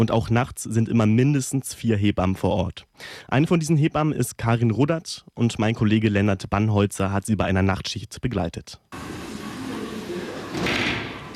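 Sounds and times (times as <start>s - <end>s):
speech: 0.0s - 9.3s
sliding door to a hospital delivery room pushed open: 8.9s - 11.3s
low murmur: 9.0s - 11.3s.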